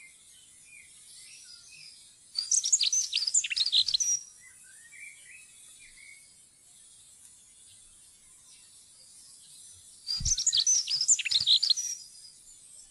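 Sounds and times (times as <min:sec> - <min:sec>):
faint soft chirps: 0:00.8 - 0:12.9
dunnock singing: 0:10.1 - 0:11.8.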